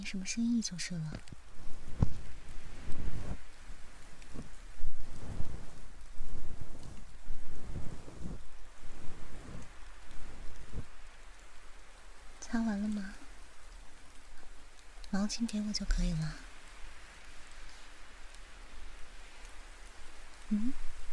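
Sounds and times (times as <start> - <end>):
speech: 0.0 - 1.4, 15.1 - 16.4, 20.5 - 20.9
heavy rain pouring: 0.0 - 21.1.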